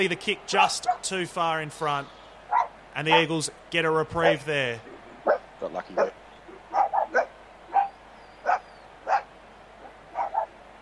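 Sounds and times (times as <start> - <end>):
speech: 0.0 - 2.2, 3.0 - 6.2
dog barking in short sharp bursts: 0.8 - 1.0, 2.5 - 3.2, 6.0 - 10.8.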